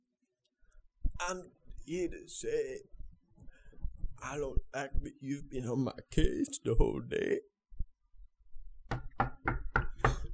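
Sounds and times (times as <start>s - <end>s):
speech: 1.2s - 3.0s, 4.2s - 7.5s
firm knocking on a door: 8.9s - 10.3s.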